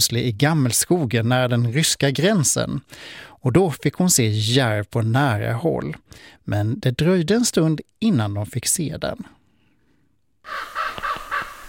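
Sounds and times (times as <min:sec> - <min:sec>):
speech: 0:00.0 - 0:09.4
common raven croaking: 0:10.4 - 0:11.6.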